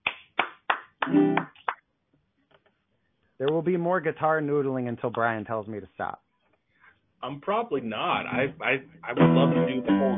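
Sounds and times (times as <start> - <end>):
hand claps of applause: 0.0 - 1.9
speech: 1.1 - 1.5, 3.4 - 6.2, 7.2 - 10.1.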